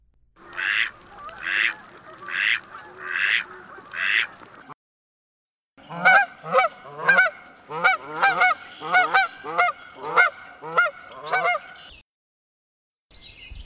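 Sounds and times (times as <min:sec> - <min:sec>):
bird giving higher harmonic honking calls: 0:00.4 - 0:04.7, 0:05.8 - 0:12.0
mallard duck quacking: 0:00.4 - 0:04.8, 0:05.8 - 0:11.8.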